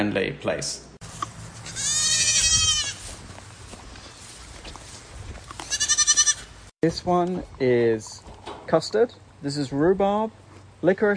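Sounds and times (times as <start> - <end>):
speech: 0.0 - 0.9, 6.8 - 11.1
quiet outdoor noise: 0.0 - 11.1
goats bleating loudly: 1.6 - 3.1, 5.6 - 6.5.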